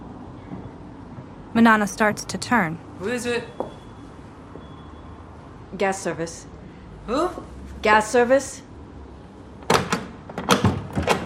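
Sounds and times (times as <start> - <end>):
speech: 1.6 - 3.6, 5.7 - 6.5, 7.1 - 8.6
door being opened: 9.6 - 11.2.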